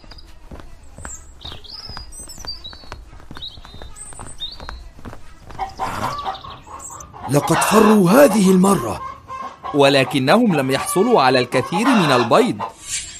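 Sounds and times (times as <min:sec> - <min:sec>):
scuffling footsteps: 0:00.0 - 0:09.0
chickens in a henhouse squawking and clucking, disturbed by foxes: 0:05.2 - 0:13.1
speech: 0:07.3 - 0:09.1, 0:09.7 - 0:13.1.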